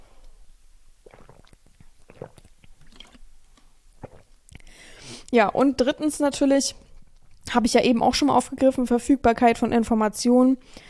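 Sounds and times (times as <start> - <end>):
person drinking with wet gulps and swallowing: 1.0 - 4.7
speech: 5.3 - 6.8, 7.5 - 10.8.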